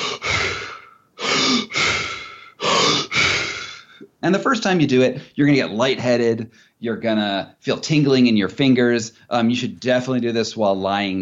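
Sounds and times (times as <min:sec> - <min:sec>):
fast deep breathing in a hyperventilation demonstration: 0:00.0 - 0:04.1
speech: 0:04.2 - 0:11.2.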